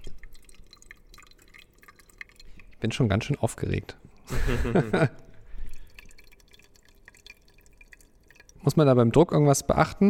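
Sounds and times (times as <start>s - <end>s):
coffee dripping from an Aeropress into a carafe: 0.0s - 9.4s
speech: 2.8s - 5.2s, 8.7s - 10.0s
person laughing: 4.3s - 5.3s.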